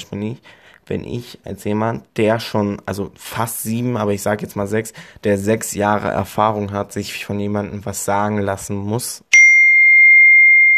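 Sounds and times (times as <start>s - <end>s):
speech: 0.0s - 9.3s
mobile phone notification ding: 9.3s - 10.7s.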